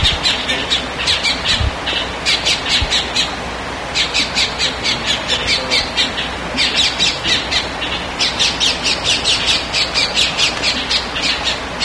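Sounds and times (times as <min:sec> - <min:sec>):
bird squawking: 0:00.0 - 0:11.8
steady background hiss: 0:00.0 - 0:11.8.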